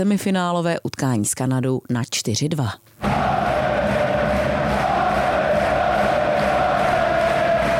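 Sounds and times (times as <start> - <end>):
speech: 0.0 - 3.3
large crowd of hockey fans chanting: 3.0 - 7.7
rhythmic clapping of hockey fans: 3.0 - 7.7.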